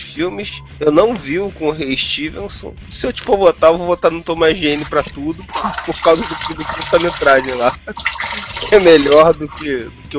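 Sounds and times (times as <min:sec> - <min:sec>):
speech: 0:00.2 - 0:10.1
water running from a tap: 0:04.6 - 0:09.8
man laughing: 0:05.4 - 0:06.6, 0:07.4 - 0:08.5.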